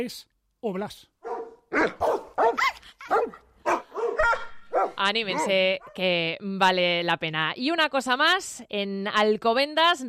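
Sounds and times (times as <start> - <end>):
speech: 0.0 - 1.1, 1.7 - 3.4, 5.0 - 10.0
dog barking: 1.2 - 6.0.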